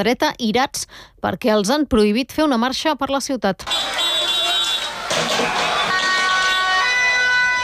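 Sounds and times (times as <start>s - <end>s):
speech: 0.0s - 4.5s, 5.2s - 6.1s
sudden loud burst of noise: 3.6s - 6.9s
agitated crowd in a street clash: 3.6s - 7.6s
sirens wailing at a street riot: 3.6s - 7.6s.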